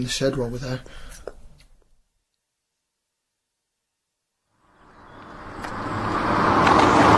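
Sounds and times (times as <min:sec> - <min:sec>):
speech: 0:00.0 - 0:01.1
car engine and road noise as the car drives by: 0:04.6 - 0:07.1.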